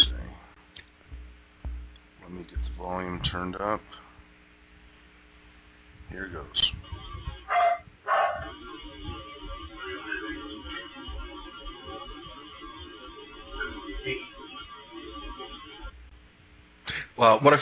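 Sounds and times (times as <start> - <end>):
steady warbling hiss: 0.0 - 17.6
speech: 2.3 - 4.0, 6.1 - 6.9, 17.2 - 17.6
dog barking: 7.5 - 8.6.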